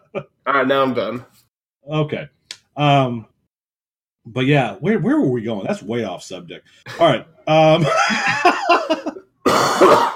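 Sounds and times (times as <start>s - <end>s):
speech: 0.1s - 3.3s, 4.2s - 10.1s
laughter: 7.7s - 9.3s
person hacking coughs off-mic: 9.4s - 10.1s.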